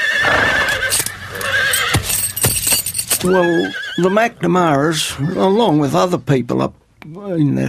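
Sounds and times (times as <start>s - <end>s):
brumby horse hooves clopping: 0.0s - 4.0s
brumby horse whinnying: 0.0s - 5.8s
speech: 3.2s - 7.6s.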